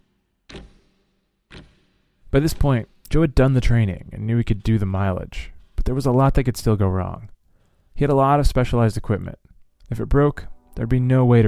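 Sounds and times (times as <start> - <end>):
countdown clock ticking: 1.5 - 6.5
speech: 2.3 - 7.3, 8.0 - 11.4.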